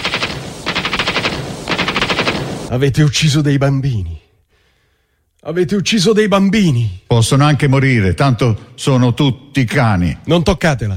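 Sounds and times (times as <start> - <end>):
machine gun fire during a raid on a hospital: 0.0 - 2.7
speech: 2.7 - 4.2, 5.4 - 10.9.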